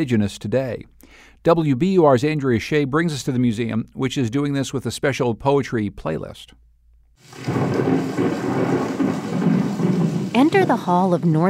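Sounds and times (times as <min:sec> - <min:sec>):
speech: 0:00.0 - 0:06.6, 0:07.2 - 0:09.2, 0:10.4 - 0:11.4
recorded rain from the Great Plains: 0:07.2 - 0:11.4
recorded thunder rumbling from the Great Plains: 0:07.2 - 0:11.4.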